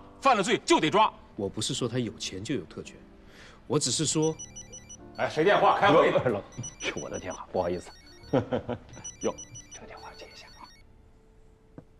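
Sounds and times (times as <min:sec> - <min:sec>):
speech: 0:00.2 - 0:09.9
mobile phone ringing with a repeating electronic melody: 0:04.1 - 0:10.8.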